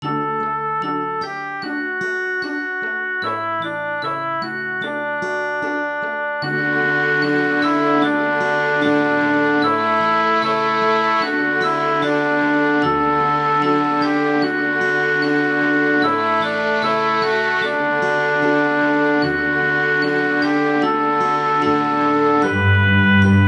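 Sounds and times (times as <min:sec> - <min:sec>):
cello lullaby: 0:00.0 - 0:23.4.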